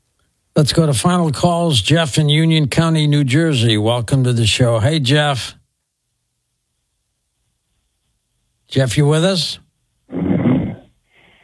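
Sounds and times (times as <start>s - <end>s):
speech: 0.6s - 5.6s, 8.7s - 9.6s
man snoring over a thin telephone line: 10.1s - 10.9s.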